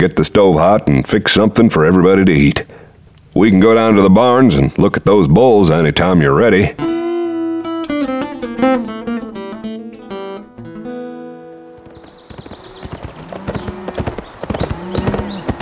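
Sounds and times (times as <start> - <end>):
speech: 0.0 - 2.8, 3.4 - 7.0, 8.6 - 8.9
sustained tonal sound: 7.8 - 10.6
horse hooves galloping in a quick uneven clatter: 11.6 - 15.6.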